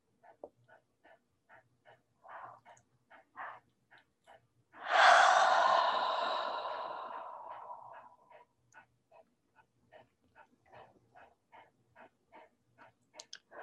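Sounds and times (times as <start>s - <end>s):
deep exhale during a guided meditation: 4.8s - 8.4s.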